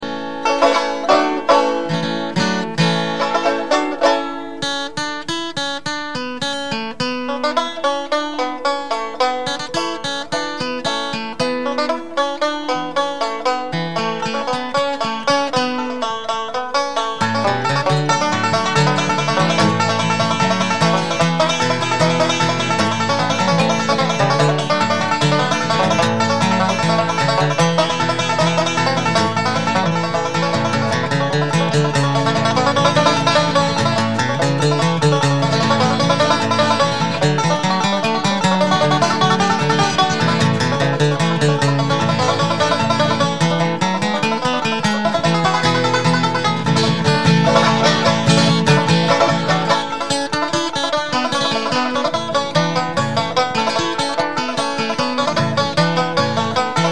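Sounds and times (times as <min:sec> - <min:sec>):
banjo film music: 0:00.0 - 0:56.9
guitar film music: 0:00.0 - 0:56.9.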